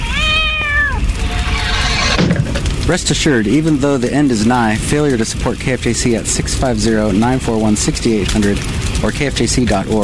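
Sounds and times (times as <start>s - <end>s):
cat meowing and yowling in long drawn-out calls: 0.0s - 1.1s
steady low rumble: 0.0s - 10.0s
speech: 2.9s - 10.0s.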